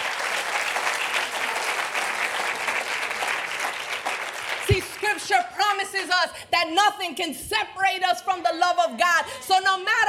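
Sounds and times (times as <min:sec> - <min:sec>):
sustained applause from a large crowd: 0:00.0 - 0:05.2
speech: 0:04.8 - 0:10.0.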